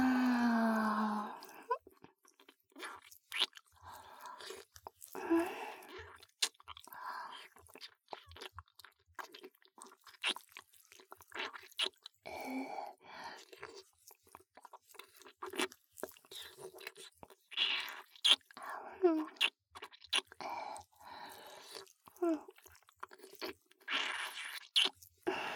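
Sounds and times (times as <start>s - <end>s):
wet sucking and chewing on a puffy turtle-shaped treat: 0.0s - 25.5s.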